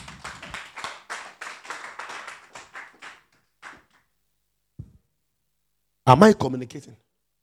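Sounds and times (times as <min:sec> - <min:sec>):
church audience clapping hands: 0:00.0 - 0:04.1
speech: 0:06.1 - 0:07.1.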